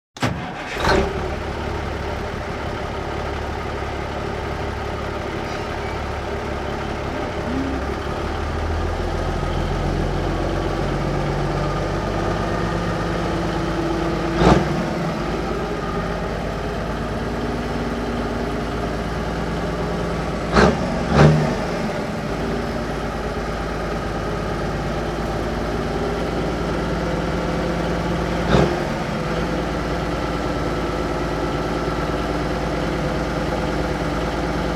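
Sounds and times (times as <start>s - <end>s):
1954 Int big rig engine starting idling revving and shutting off: 0.2s - 34.7s.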